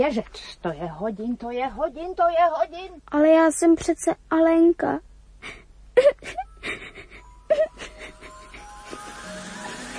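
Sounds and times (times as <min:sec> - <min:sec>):
speech: 0:00.0 - 0:06.8
faint steady hum: 0:00.0 - 0:09.9
girl crying and wailing: 0:06.0 - 0:09.2.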